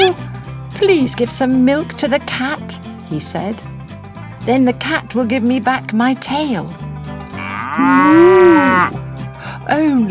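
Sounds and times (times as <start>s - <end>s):
speech: 0.8s - 3.7s, 4.4s - 6.8s, 7.8s - 9.0s, 9.7s - 10.1s
cow mooing: 7.3s - 9.0s.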